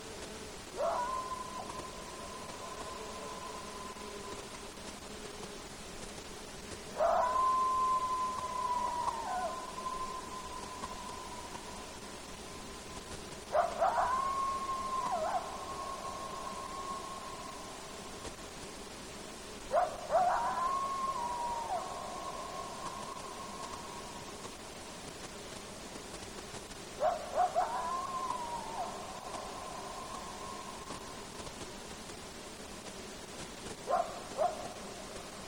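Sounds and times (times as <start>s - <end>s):
coyote howling in Alaska: 0.7s - 4.0s, 7.0s - 11.9s, 13.5s - 17.8s, 19.7s - 24.3s, 27.0s - 31.2s, 33.9s - 34.8s.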